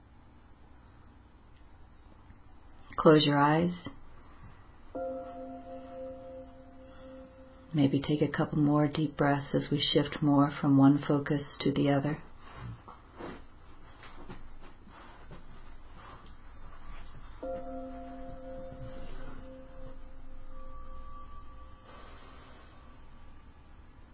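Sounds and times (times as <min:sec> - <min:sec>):
constant low rumble and hiss: 0:00.0 - 0:24.1
speech: 0:03.0 - 0:04.0, 0:07.7 - 0:12.3
higher chime ringing: 0:04.9 - 0:09.2, 0:17.4 - 0:23.7
Tibetan bells ringing: 0:05.0 - 0:08.8, 0:17.4 - 0:23.0.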